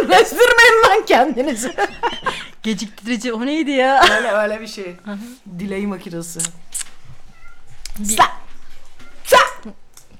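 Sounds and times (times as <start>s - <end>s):
laughter: 0.0s - 2.6s
speech: 0.1s - 6.8s, 8.0s - 8.4s, 9.6s - 9.8s
cat meowing: 7.3s - 7.7s.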